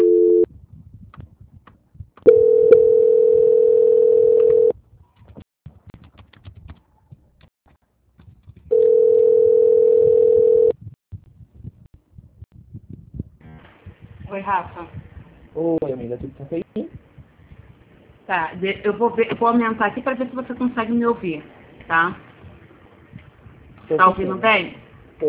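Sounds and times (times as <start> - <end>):
telephone line tones during a call transfer: 0.0 - 0.5, 2.3 - 4.7, 8.7 - 10.7
speech: 15.6 - 17.0, 18.3 - 22.3, 23.9 - 25.2.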